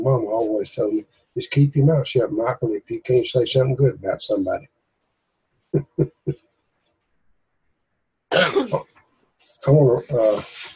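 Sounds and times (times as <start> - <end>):
speech: 0.0 - 4.8, 5.7 - 6.4, 8.3 - 8.9, 9.6 - 10.7
person coughing: 8.3 - 8.9.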